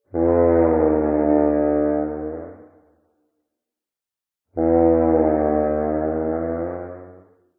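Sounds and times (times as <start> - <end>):
dinosaur long groan call: 0.1 - 2.6, 4.6 - 7.3.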